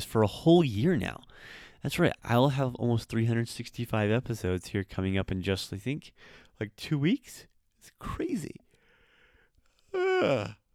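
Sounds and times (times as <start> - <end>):
speech: 0.0 - 8.6, 9.9 - 10.6
person yawning: 9.8 - 10.7.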